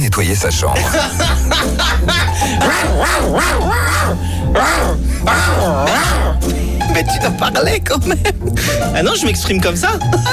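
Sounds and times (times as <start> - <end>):
speech: 0.1 - 10.3
laughter: 0.8 - 6.4, 8.0 - 10.3
man growling and yelping to drive a cleaning woman away: 1.9 - 6.6.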